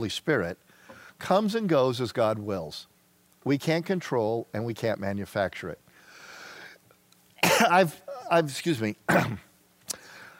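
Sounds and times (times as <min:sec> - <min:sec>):
speech: 0:00.0 - 0:05.8, 0:07.6 - 0:09.5
person clearing throat: 0:07.4 - 0:08.3, 0:09.1 - 0:09.5
person coughing: 0:07.4 - 0:08.3, 0:09.1 - 0:09.5.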